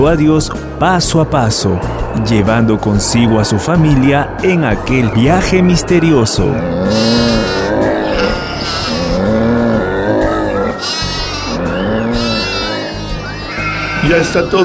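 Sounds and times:
speech: 0.0s - 7.9s, 14.1s - 14.6s
flock of sheep bleating: 6.7s - 14.6s.

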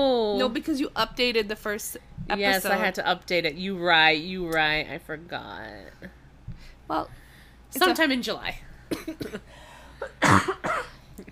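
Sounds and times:
speech: 0.0s - 6.1s, 6.9s - 10.6s
person coughing: 8.9s - 11.0s.

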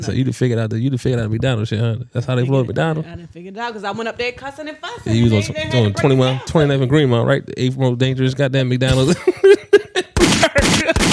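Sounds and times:
speech: 0.0s - 9.6s
laughter: 8.9s - 11.1s
voice imitating gunshots: 10.2s - 11.1s.

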